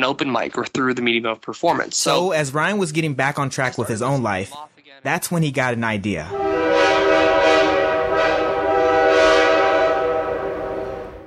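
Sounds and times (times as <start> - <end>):
speech: 0.0 - 8.4
train horn: 6.3 - 11.2
rumbling rail noise of a passing train: 6.4 - 11.2.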